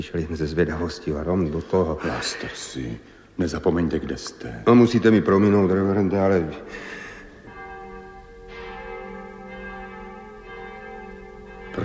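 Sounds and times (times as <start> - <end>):
speech: 0.0 - 7.0
church bells ringing: 5.4 - 11.8.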